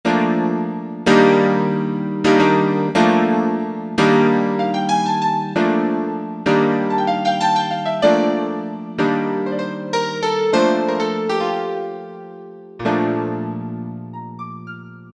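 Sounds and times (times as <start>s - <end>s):
stage piano on a Generalmusic Equinox synthesizer: 0.0s - 15.1s.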